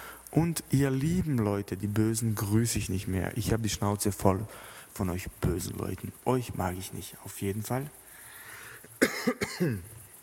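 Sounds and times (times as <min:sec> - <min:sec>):
speech: 0:00.3 - 0:08.0, 0:09.2 - 0:10.0
short harsh coughs: 0:09.0 - 0:09.9.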